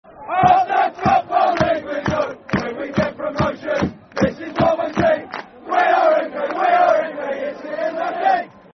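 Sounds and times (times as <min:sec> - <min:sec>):
football crowd chanting: 0:00.1 - 0:08.7.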